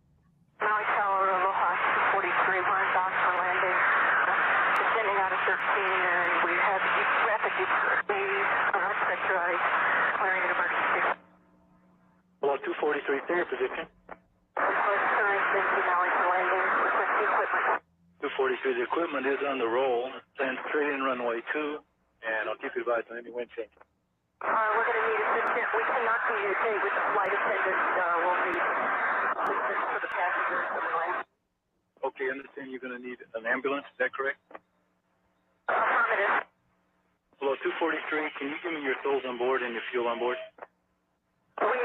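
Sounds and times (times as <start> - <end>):
radio static hiss: 0.6 - 11.2, 12.4 - 13.9, 14.6 - 23.1, 24.4 - 31.2, 35.7 - 36.4, 37.4 - 40.6, 41.6 - 41.8
man speaking over cockpit-to-control-tower radio transmission: 12.4 - 13.9, 18.2 - 23.7, 32.0 - 34.4, 37.4 - 40.6
speech: 13.0 - 14.0, 18.6 - 31.2, 32.2 - 34.4, 37.8 - 40.5.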